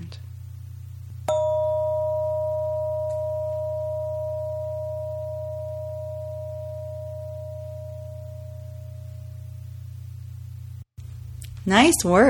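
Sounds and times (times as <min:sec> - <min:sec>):
steady low hum: 0:00.1 - 0:11.6
bell struck and ringing a sustained tone: 0:01.3 - 0:09.4
speech: 0:11.7 - 0:12.2.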